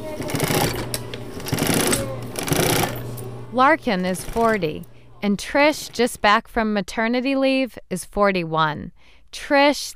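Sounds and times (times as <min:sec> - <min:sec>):
sewing machine stitching shoes in a factory: 0:00.0 - 0:03.0, 0:03.8 - 0:04.8, 0:05.5 - 0:06.4
speech: 0:03.6 - 0:09.9.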